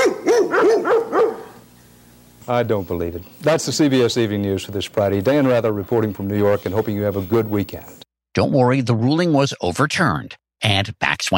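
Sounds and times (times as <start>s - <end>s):
dog in Virginia barking: 0.0s - 1.6s
speech: 2.5s - 11.3s.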